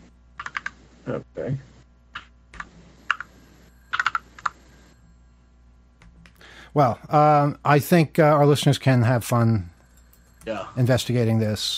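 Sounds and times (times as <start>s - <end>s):
keys clacking on a computer keyboard: 0.4s - 0.7s, 3.9s - 4.5s
speech: 1.0s - 1.7s, 6.8s - 9.7s, 10.4s - 11.7s.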